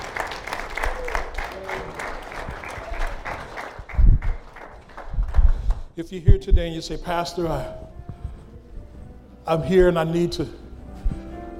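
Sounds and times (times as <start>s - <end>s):
audience applauding: 0.0s - 5.9s
speech: 6.0s - 7.8s, 9.5s - 10.6s.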